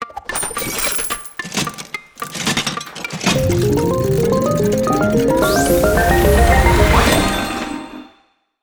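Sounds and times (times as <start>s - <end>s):
gacha machine full sequence: 3.1s - 8.0s.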